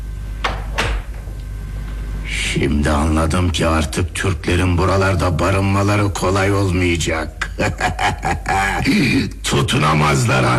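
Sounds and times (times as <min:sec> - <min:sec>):
quiet hum: 0:00.0 - 0:10.5
door being closed with clacks and a low thud: 0:00.4 - 0:01.4
speech: 0:02.6 - 0:10.5
laughter: 0:07.4 - 0:09.3.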